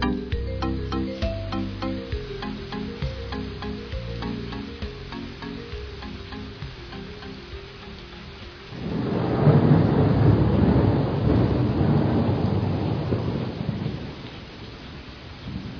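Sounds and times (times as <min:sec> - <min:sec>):
heavy rain pouring: 0:00.0 - 0:15.7
low rumbling thunder: 0:08.7 - 0:14.3, 0:15.4 - 0:15.7.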